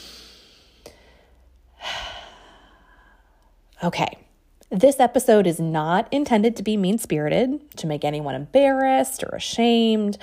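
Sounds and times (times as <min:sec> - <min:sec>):
group taking a deep breath together: 0:00.0 - 0:03.4
speech: 0:03.8 - 0:10.2.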